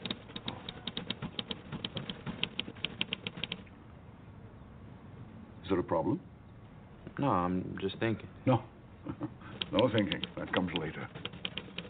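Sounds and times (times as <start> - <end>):
typewriter keys clacking: 0.0 - 3.6, 9.5 - 11.8
speech: 5.7 - 6.3, 7.2 - 11.3.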